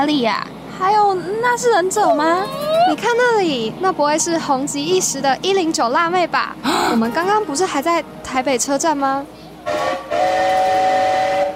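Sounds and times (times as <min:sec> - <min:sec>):
speech: 0:00.0 - 0:09.9
train whistle blowing as train is about to depart: 0:09.6 - 0:11.5.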